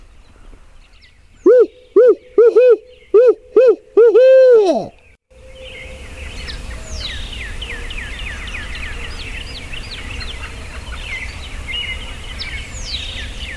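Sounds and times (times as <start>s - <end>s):
turkey hunter imitating an owl's hooting call: 1.5s - 5.0s.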